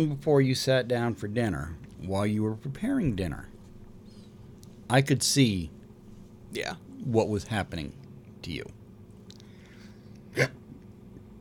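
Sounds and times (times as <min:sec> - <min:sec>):
speech: 0:00.0 - 0:03.5, 0:04.9 - 0:05.8, 0:06.5 - 0:08.8, 0:10.4 - 0:10.6
short abrupt burp: 0:10.3 - 0:10.6.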